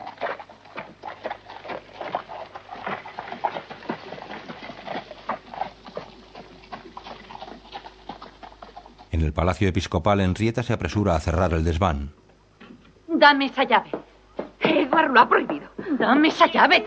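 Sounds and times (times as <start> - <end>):
horse hooves clopping of a horse-drawn carriage: 0.0 - 10.3, 13.7 - 15.7
speech: 9.1 - 12.2, 13.2 - 14.0, 15.0 - 16.8.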